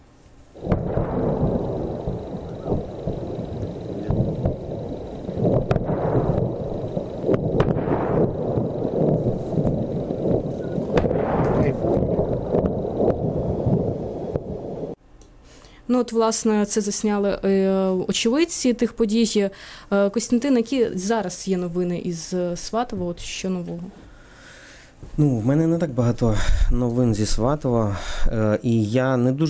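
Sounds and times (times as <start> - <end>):
heavy rolling booms of explosions: 0.6 - 15.0
sharp cracks: 0.6 - 15.0
wind noise: 0.6 - 15.0
speech: 15.9 - 24.0, 25.0 - 29.4.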